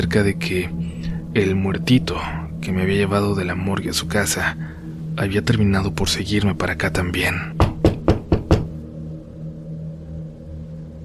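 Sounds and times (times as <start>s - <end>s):
speech: 0.0s - 7.6s
knocking on a bedroom door: 7.6s - 8.8s.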